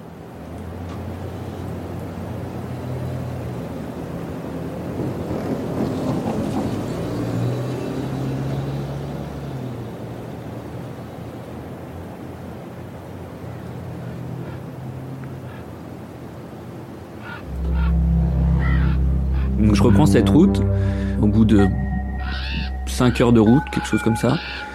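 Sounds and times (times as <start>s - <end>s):
huge truck passing on a snowy road: 0.3s - 11.3s, 17.3s - 24.7s
speech: 19.8s - 21.8s, 23.0s - 24.7s.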